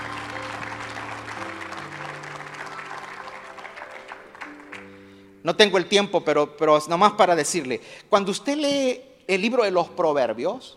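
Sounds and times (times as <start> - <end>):
sustained organ or keyboard chords: 0.0 - 5.0
audience applauding: 0.0 - 5.2
speech: 5.4 - 10.7.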